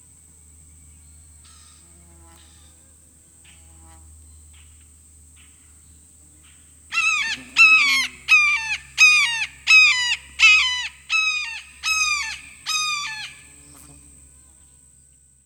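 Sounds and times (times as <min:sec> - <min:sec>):
red-shouldered hawk kee-ah screams: 0:06.9 - 0:13.4.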